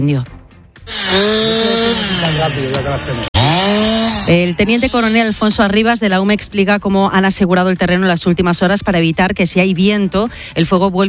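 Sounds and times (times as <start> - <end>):
speech: 0.0 - 0.4, 1.1 - 11.0
chainsaw cutting wood for a wildfire control line in Mijares Spain: 0.8 - 5.6.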